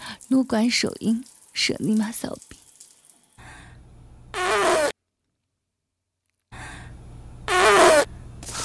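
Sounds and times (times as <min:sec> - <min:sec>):
low steady hum: 0:00.0 - 0:04.9, 0:06.4 - 0:08.6
speech: 0:00.3 - 0:02.6
woman farting: 0:04.4 - 0:04.9, 0:07.5 - 0:08.6.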